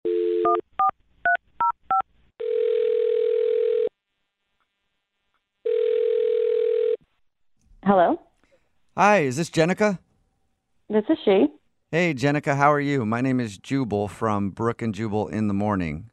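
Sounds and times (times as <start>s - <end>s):
telephone dial tone: 0.1s - 0.6s, 2.4s - 3.9s, 5.7s - 7.0s
speech: 0.5s - 0.8s, 7.9s - 8.3s, 9.0s - 10.0s, 10.9s - 16.1s.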